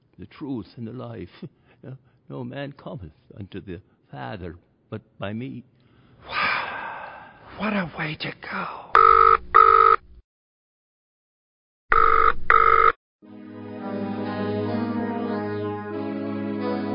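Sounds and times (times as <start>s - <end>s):
speech: 0.2s - 6.4s, 7.6s - 8.8s
telephone bell ringing: 9.0s - 10.0s, 11.9s - 13.0s
music: 13.2s - 16.9s.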